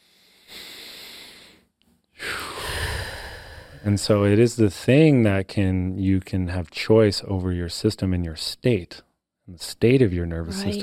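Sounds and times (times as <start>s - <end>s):
long deep breath drawn in through the nose: 0.0s - 3.9s
speech: 3.8s - 10.8s.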